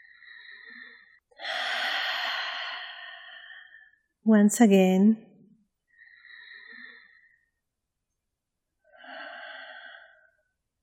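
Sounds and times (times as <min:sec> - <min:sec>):
deep breath during a guided breathing exercise: 0:00.0 - 0:04.1, 0:05.9 - 0:07.6, 0:08.8 - 0:10.6
speech: 0:04.3 - 0:05.3.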